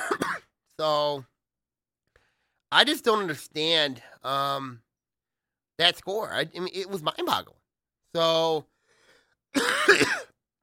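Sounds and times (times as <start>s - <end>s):
throat-clearing cough: 0.0s - 0.6s, 9.5s - 10.6s
speech: 0.8s - 1.3s, 2.7s - 4.8s, 5.8s - 8.7s, 9.5s - 10.6s.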